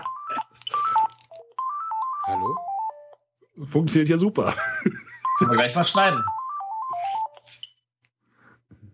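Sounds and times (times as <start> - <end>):
mobile phone ringtone with bright stepping electronic melody: 0.0 - 3.2, 5.0 - 7.4
speech: 3.6 - 6.4.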